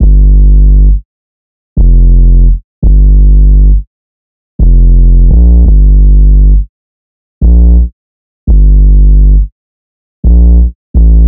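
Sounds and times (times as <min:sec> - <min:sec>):
808 bass drum loop in G minor: 0:00.0 - 0:01.0, 0:01.8 - 0:03.8, 0:04.6 - 0:06.7, 0:07.4 - 0:07.9, 0:08.5 - 0:09.5, 0:10.2 - 0:11.2.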